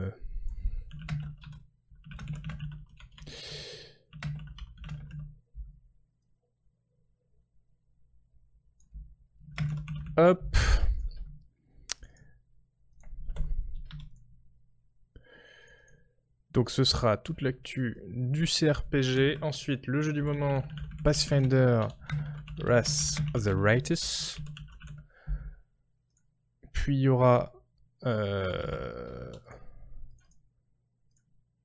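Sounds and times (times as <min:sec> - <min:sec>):
rapid clacking keystrokes on a mechanical keyboard: 0:00.9 - 0:03.3, 0:04.1 - 0:05.4, 0:09.5 - 0:10.2, 0:13.0 - 0:14.2, 0:18.8 - 0:25.1
speech: 0:10.2 - 0:10.7, 0:16.6 - 0:24.5, 0:26.9 - 0:29.6.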